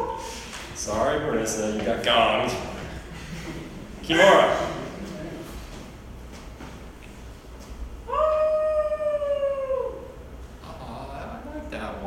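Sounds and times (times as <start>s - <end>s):
person imitating a werewolf howl: 0.0s - 0.3s, 8.1s - 10.2s
speech: 0.8s - 2.8s, 4.1s - 4.7s
laughter: 2.7s - 5.9s.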